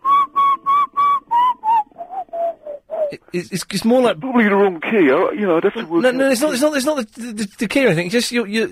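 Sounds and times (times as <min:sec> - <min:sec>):
person whistling breathily: 0:00.0 - 0:03.2
speech: 0:03.1 - 0:08.7.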